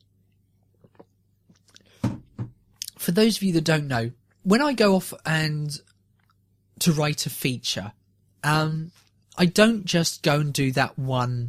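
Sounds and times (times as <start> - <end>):
person sipping a drink: 0.8 - 2.0
speech: 3.1 - 5.9, 6.8 - 11.4.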